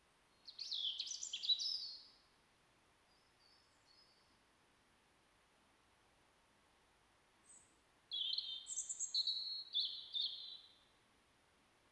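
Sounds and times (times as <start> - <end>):
European robin Erithacus rubecula singing: 0.4 - 2.0, 7.5 - 10.8.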